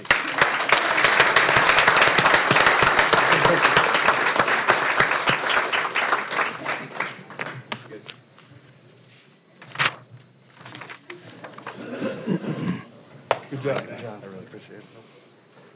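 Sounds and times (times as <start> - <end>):
crowd applause honoring a county employee's service: 0.0 - 7.7.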